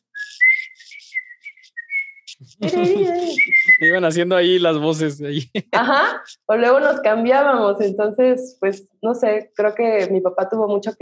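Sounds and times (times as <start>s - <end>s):
person whistling a mariachi trumpet melody: 0.0s - 2.3s, 3.2s - 4.2s
laughter: 2.3s - 6.4s
speech: 2.4s - 10.9s.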